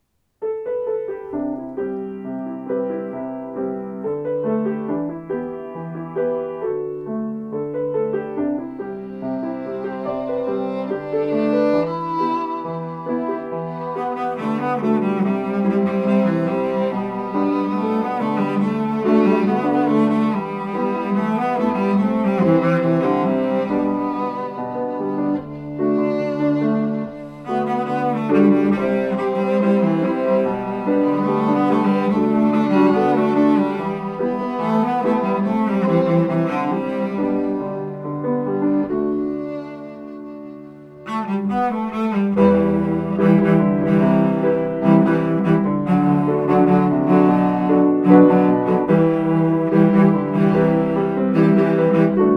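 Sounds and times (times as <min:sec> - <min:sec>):
song with piano: 0:00.0 - 0:52.3.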